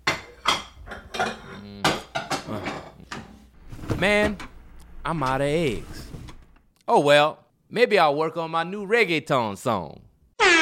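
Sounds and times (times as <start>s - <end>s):
pots, pans and utensils clattering while making breakfast: 0.0s - 4.4s
speech: 4.0s - 6.0s, 6.9s - 10.1s.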